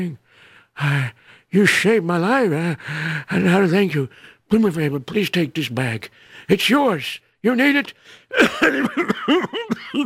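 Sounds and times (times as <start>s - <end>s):
speech: 0.0s - 10.0s
person coughing: 8.3s - 10.0s.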